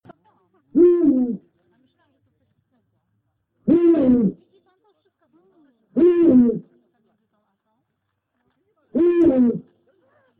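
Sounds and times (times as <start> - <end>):
eagle owl calling: 0.8 - 1.5, 3.7 - 4.4, 6.0 - 6.7, 9.0 - 9.7.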